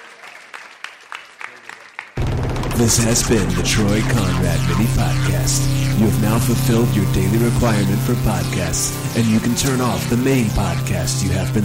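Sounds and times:
audience applause at a live comedy show: 0.0s - 2.8s
speech: 2.8s - 11.6s.

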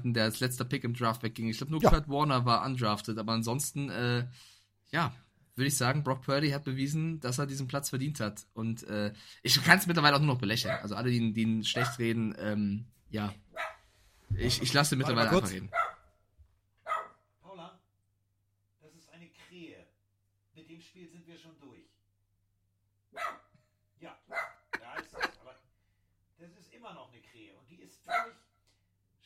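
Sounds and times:
speech: 0.0s - 13.7s, 14.3s - 16.0s, 20.7s - 21.9s, 23.1s - 23.4s, 26.4s - 28.4s
dog barking: 10.6s - 10.9s, 11.8s - 12.0s, 13.5s - 13.8s, 15.7s - 16.1s, 16.8s - 17.2s, 23.1s - 23.5s, 24.3s - 24.7s, 28.1s - 28.5s
laughter: 24.7s - 25.6s.

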